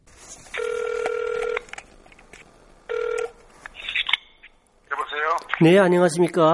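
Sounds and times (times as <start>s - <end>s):
ringback tones on a phone line during an outgoing call: 0.6s - 1.7s, 2.9s - 3.4s
speech: 5.6s - 6.5s.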